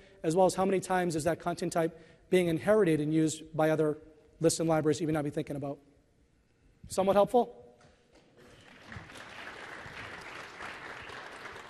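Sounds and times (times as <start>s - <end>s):
speech: 0.2s - 5.9s, 6.9s - 7.6s
audience applause: 8.4s - 11.6s.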